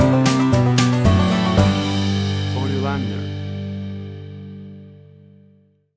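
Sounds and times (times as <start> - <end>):
bouncy country fiddle music stinger: 0.0 - 4.2.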